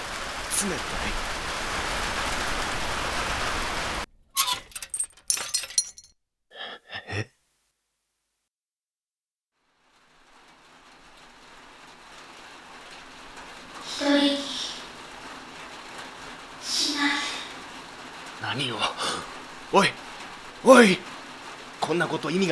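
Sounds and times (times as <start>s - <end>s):
steady cold rain pattering on surfaces: 0.0s - 4.2s, 9.6s - 22.5s
speech: 0.6s - 1.4s, 20.7s - 21.0s, 22.0s - 22.5s.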